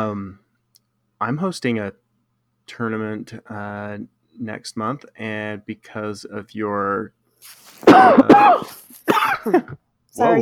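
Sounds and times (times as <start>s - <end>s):
speech: 1.2s - 2.0s, 2.7s - 10.4s
raspy coughing with throat-clearing: 7.8s - 9.8s.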